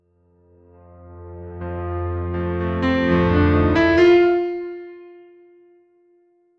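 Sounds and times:
tonal piano rise for a trailer: 0.5s - 5.8s.

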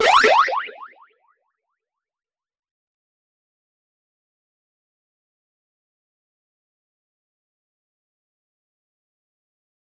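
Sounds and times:
retro handheld game console sound effect: 0.0s - 0.6s.

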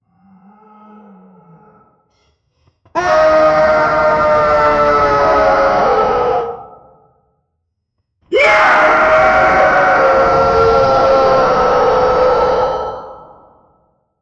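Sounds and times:
person screaming frantically in agony: 3.0s - 6.6s, 8.3s - 13.4s.

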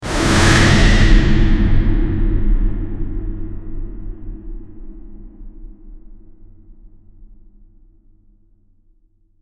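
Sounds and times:
powerful dark game impact: 0.0s - 7.0s.

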